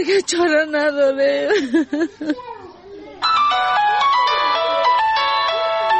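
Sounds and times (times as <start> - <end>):
speech: 0.0 - 2.7
laughter: 1.4 - 2.5
mobile phone ringtone with bright electronic melody: 3.2 - 5.9.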